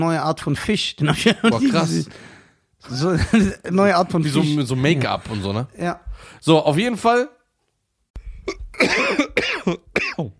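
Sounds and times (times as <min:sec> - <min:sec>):
speech: 0:00.0 - 0:07.4, 0:08.5 - 0:10.3
laughter: 0:01.0 - 0:02.1
person coughing: 0:08.4 - 0:10.3
throat clearing: 0:08.4 - 0:10.3.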